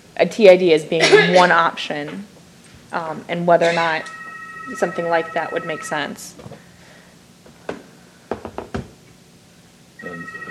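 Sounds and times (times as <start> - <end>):
speech: 0.2 - 2.3, 2.9 - 6.6
incoming video call ringing on a computer: 4.0 - 6.4, 10.0 - 10.5
dull knocks and thumps: 7.7 - 9.0.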